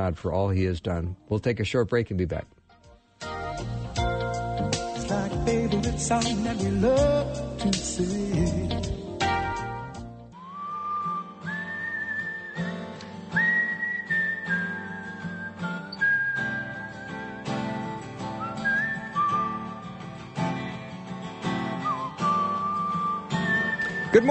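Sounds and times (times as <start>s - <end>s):
speech: 0.0s - 2.6s, 5.5s - 8.9s
steady instrumental backing track: 2.7s - 24.2s
man whistling a clear wavering melody: 10.4s - 20.0s, 21.6s - 24.2s.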